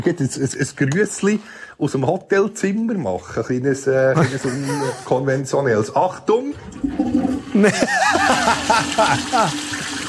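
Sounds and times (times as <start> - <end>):
speech: 0.0 - 9.8
laughter: 4.2 - 5.3, 7.5 - 10.0
toilet flushing in a hotel room in Vienna Austria: 6.1 - 10.0.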